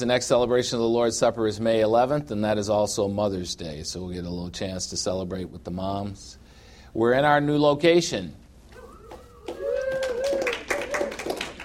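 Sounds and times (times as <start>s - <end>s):
speech: 0.0s - 8.4s
small audience applause: 9.0s - 11.6s.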